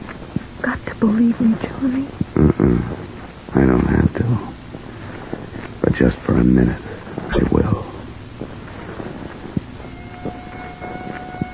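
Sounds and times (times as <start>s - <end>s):
low rumbling noise: 0.0s - 11.5s
steady wind: 0.0s - 11.5s
speech: 0.6s - 4.5s, 5.9s - 7.6s
police car siren wailing in the country: 9.9s - 11.5s.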